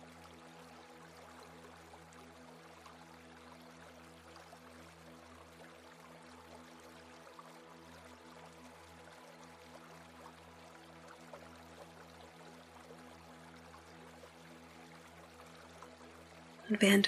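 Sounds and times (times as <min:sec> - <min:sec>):
faint low humming drone: 0:00.0 - 0:17.0
babbling brook trickling and splashing: 0:16.6 - 0:17.0
speech: 0:16.7 - 0:17.0.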